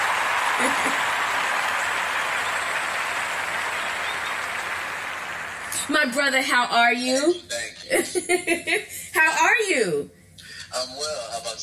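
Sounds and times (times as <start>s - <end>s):
laughter: 0.0s - 5.8s, 7.6s - 9.2s
crowd clapping: 0.0s - 6.3s
speech: 0.6s - 1.1s, 6.0s - 11.6s.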